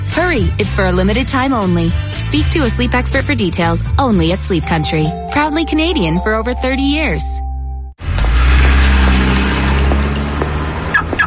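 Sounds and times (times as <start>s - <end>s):
speech: 0.2s - 7.4s
vehicle and street noise: 8.0s - 11.2s.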